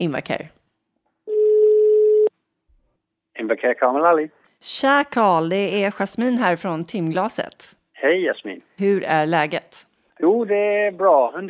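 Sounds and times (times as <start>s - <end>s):
speech: 0.0s - 0.6s, 3.4s - 11.4s
telephone ringing tone as a call is placed: 1.3s - 2.3s.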